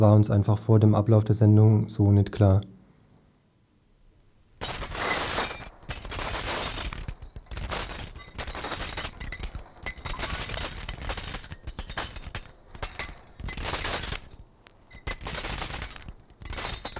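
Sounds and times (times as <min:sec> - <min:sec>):
speech: 0:00.0 - 0:02.7
shattering glass in a broadcast separator jingle: 0:04.6 - 0:16.9.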